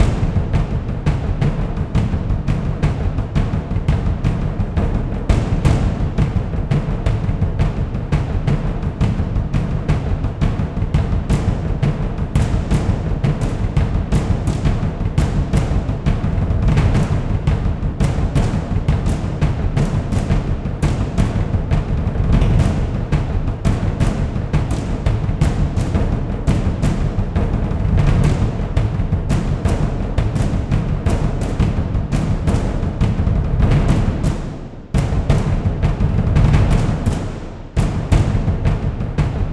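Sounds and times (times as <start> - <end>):
epic drums looped: 0.0 - 39.5.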